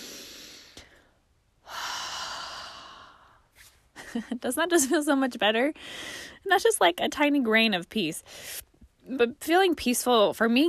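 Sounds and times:
slow deep breath: 0:00.0 - 0:03.5, 0:05.8 - 0:06.4
speech: 0:04.1 - 0:10.6.

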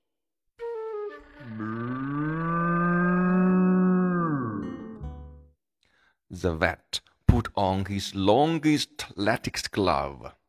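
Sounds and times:
human voice imitating a cow mooing: 0:01.4 - 0:05.0
speech: 0:06.4 - 0:10.4.

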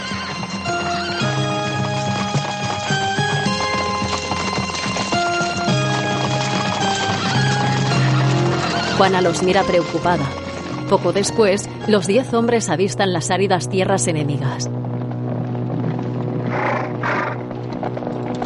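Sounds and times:
horses whinnying: 0:00.0 - 0:11.2, 0:15.6 - 0:18.3
hooves clip-clopping of horses ridden away: 0:00.0 - 0:18.4
speech: 0:09.0 - 0:15.0.

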